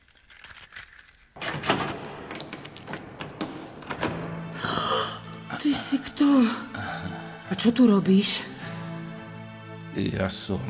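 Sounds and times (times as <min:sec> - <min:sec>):
keys jangling: 0:00.0 - 0:04.2
door being unlocked and opened: 0:00.4 - 0:04.6
speech: 0:05.6 - 0:06.7, 0:07.5 - 0:08.5, 0:10.0 - 0:10.6.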